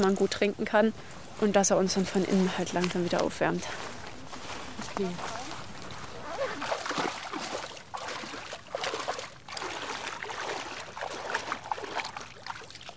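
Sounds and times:
speech: 0:00.0 - 0:04.0, 0:05.0 - 0:05.4
woman wading in cold water to swim: 0:02.6 - 0:12.9.

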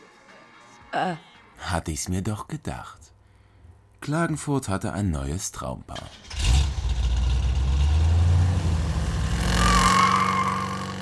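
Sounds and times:
speech: 0:00.9 - 0:03.1, 0:04.0 - 0:06.4
car engine idling and revving as the vehicle pulls away: 0:06.2 - 0:11.0.

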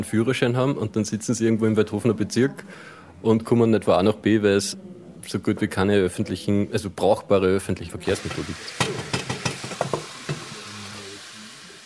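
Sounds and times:
speech: 0:00.0 - 0:09.1
wild mushrooms, milk caps and boletes, frying in a pan on a stove: 0:08.2 - 0:11.8.

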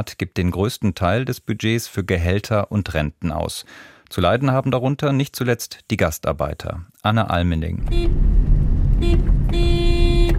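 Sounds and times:
speech: 0:00.0 - 0:08.4
car horn toot and honk: 0:07.8 - 0:08.2, 0:09.0 - 0:10.3
road traffic in a hot Gulf emirate: 0:07.8 - 0:10.3
taxi engine low rumble: 0:07.8 - 0:10.3.

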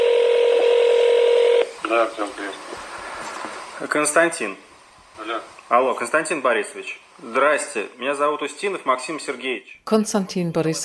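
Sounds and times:
telephone line tone: 0:00.0 - 0:01.7
speech: 0:01.9 - 0:02.8, 0:03.8 - 0:10.8.

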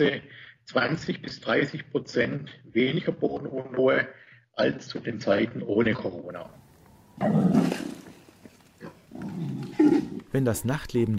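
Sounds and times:
speech: 0:00.0 - 0:06.6, 0:07.2 - 0:07.8, 0:10.3 - 0:11.1
wild boar grunting and snuffling: 0:07.2 - 0:10.4.

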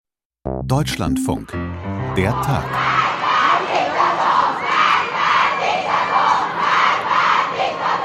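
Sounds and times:
speech: 0:00.4 - 0:03.1
crowd of young people chanting anti-government slogans at a university: 0:02.7 - 0:08.0.

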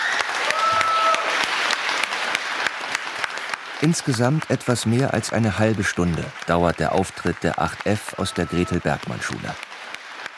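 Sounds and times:
crowd applauding: 0:00.0 - 0:10.3
speech: 0:03.8 - 0:09.7
whistle-like tone: 0:08.2 - 0:08.8.

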